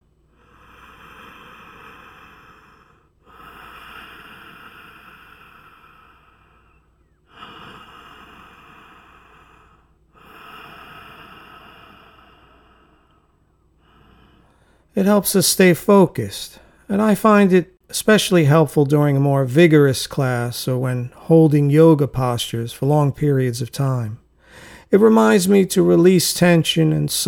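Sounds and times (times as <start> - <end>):
oceanic hissing yoga breath through the back of the throat, mouth closed: 0.3 - 14.9
speech: 15.0 - 27.2.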